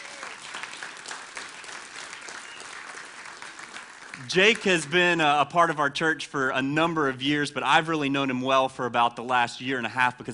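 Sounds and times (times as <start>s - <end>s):
audience applause: 0.0s - 5.8s
speech: 4.2s - 10.3s.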